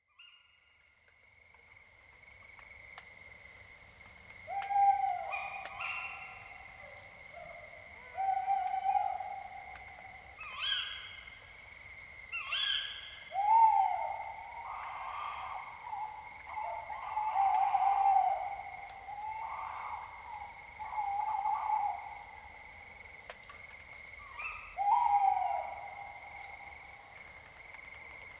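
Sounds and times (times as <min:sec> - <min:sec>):
tawny owl: 0:04.5 - 0:11.3, 0:12.3 - 0:22.4, 0:24.2 - 0:26.9.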